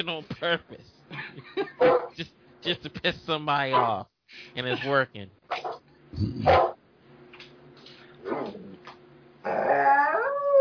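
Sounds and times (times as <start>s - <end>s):
speech: 0.0s - 6.7s
laughter: 0.3s - 2.3s, 4.6s - 5.1s
dog yelping: 1.8s - 2.1s, 3.7s - 3.9s, 9.5s - 10.5s
dog howling at night: 9.4s - 10.5s.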